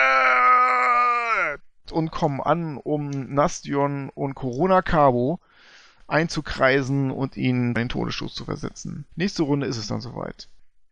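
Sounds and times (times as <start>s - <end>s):
human voice giving a guttural war cry imitating charging hobgoblins: 0.0s - 1.6s
speech: 1.9s - 10.6s.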